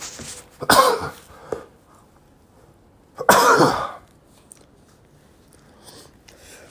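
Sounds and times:
harsh coughing: 0.6 - 1.3, 3.2 - 4.0.

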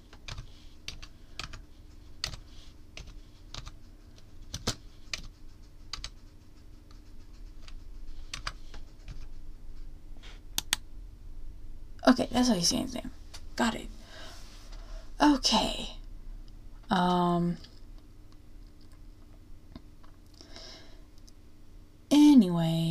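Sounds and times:
typing on a computer keyboard: 0.1 - 6.2, 7.6 - 9.3
speech: 12.1 - 14.0, 15.2 - 16.0, 16.9 - 17.7, 22.4 - 22.8.

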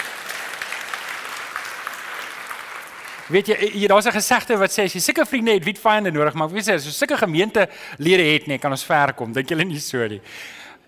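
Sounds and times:
audience applause: 0.0 - 3.9
speech: 3.3 - 10.6.

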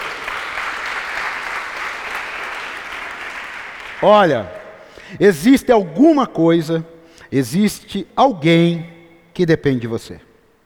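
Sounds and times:
audience applause: 0.0 - 5.0
speech: 4.0 - 10.3.

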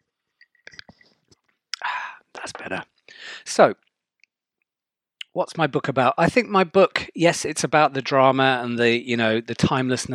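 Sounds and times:
person sipping whiskey: 0.4 - 1.9
wet mouth clicks: 0.4 - 1.9
speech: 2.5 - 3.9, 5.4 - 10.1.

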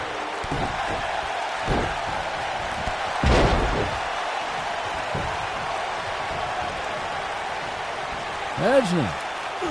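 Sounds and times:
arena crowd noise: 0.0 - 9.6
wrestler body slammed onto the ring mat: 3.2 - 4.0
speech: 8.6 - 9.6.

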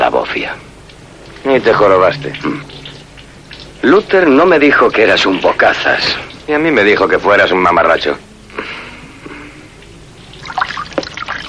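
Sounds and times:
water trickling from a washbasin tap: 0.8 - 7.1, 10.2 - 11.4
speech: 1.4 - 2.7, 3.8 - 8.3.

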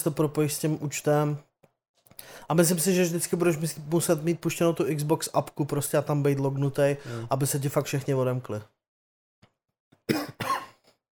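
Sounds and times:
speech: 0.0 - 1.5, 2.3 - 8.8
faint breath: 2.2 - 2.5, 7.0 - 7.3
person coughing harshly: 10.1 - 10.8.

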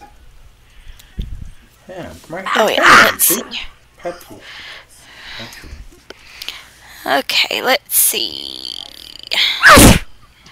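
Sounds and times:
speech: 1.9 - 4.8, 5.4 - 5.8, 7.0 - 8.8
person sneezing: 9.4 - 10.1.

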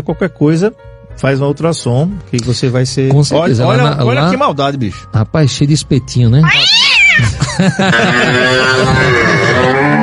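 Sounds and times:
speech: 0.0 - 10.0
cat meowing loudly and yowling: 6.4 - 7.3
laughter: 7.2 - 9.4.

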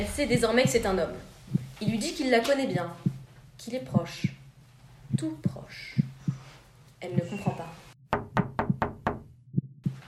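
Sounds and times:
speech: 0.0 - 4.4, 5.1 - 6.0, 7.0 - 7.8
knocking on a wooden door: 8.1 - 9.3.

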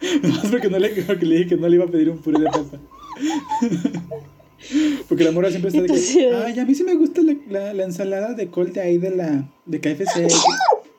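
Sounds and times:
laughter: 0.1 - 1.5, 2.2 - 4.6
speech: 0.2 - 10.8
sneeze: 10.1 - 10.8.

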